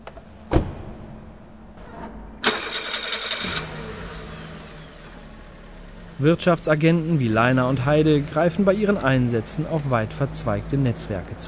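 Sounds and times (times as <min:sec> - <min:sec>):
car engine cranking, starting and idling in a garage: 0:00.0 - 0:11.4
car door thud: 0:00.1 - 0:01.5
speech: 0:06.2 - 0:11.4.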